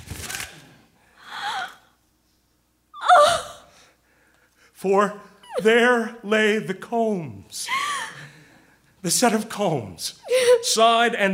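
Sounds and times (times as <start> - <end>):
paper and string tearing off a package: 0.0 - 0.7
speech: 4.8 - 7.9, 9.0 - 11.3.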